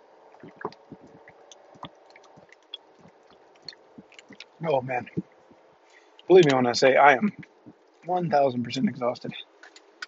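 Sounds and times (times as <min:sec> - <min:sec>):
person gulping water: 0:00.4 - 0:05.3
small squishy mouth clicks: 0:00.4 - 0:05.6
speech: 0:04.6 - 0:05.3, 0:06.3 - 0:07.5, 0:08.1 - 0:09.4.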